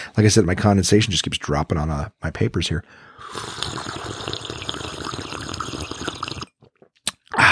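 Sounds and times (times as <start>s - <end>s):
speech: 0.2s - 4.0s
slurping a drink: 3.2s - 7.3s.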